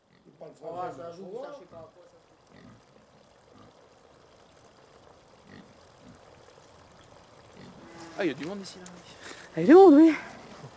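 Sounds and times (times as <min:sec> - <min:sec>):
pig grunting and oinking: 0:00.0 - 0:00.4, 0:01.6 - 0:03.9, 0:05.4 - 0:06.4, 0:07.4 - 0:08.2
speech: 0:00.4 - 0:02.8, 0:08.2 - 0:10.4.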